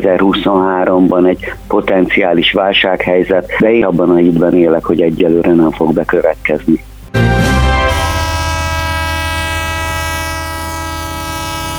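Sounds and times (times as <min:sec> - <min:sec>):
speech: 0:00.0 - 0:07.5
train horn blasting a long steady chord: 0:07.8 - 0:11.7.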